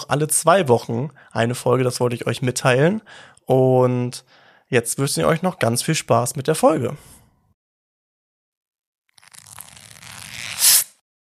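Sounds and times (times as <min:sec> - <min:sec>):
speech: 0:00.1 - 0:07.2
sheet of paper torn in a slow continuous rip: 0:09.2 - 0:11.0.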